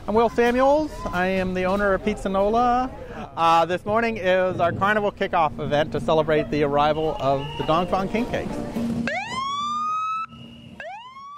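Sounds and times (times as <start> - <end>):
speech: 0.1 - 8.8
police sirens wailing as an escort for a delivery van: 5.6 - 11.3.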